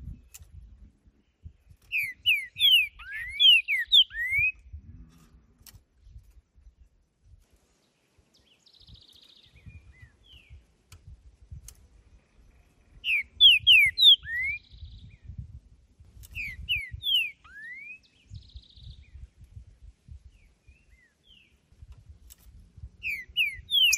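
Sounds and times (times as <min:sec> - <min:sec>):
green-winged saltator singing descending whistles in nature: 0:01.9 - 0:04.8, 0:08.4 - 0:10.6, 0:12.9 - 0:15.4, 0:16.3 - 0:19.2, 0:23.0 - 0:23.9.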